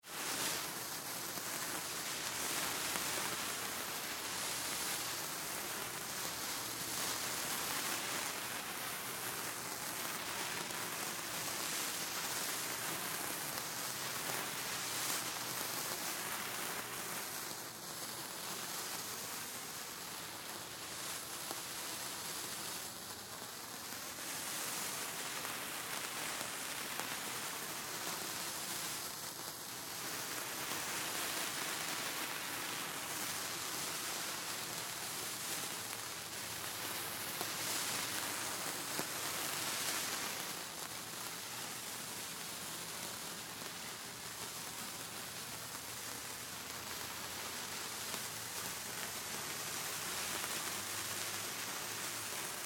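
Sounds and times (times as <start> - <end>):
multiple fire sparklers burning with gentle moves at Chinese New Year: 0.0 - 52.6.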